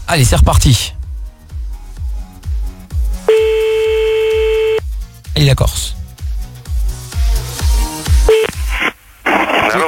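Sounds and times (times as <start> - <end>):
speech: 0.1 - 1.0, 5.4 - 6.0
thumping music beat: 0.3 - 8.8
telephone line tone while phoning a caller back: 3.3 - 4.8.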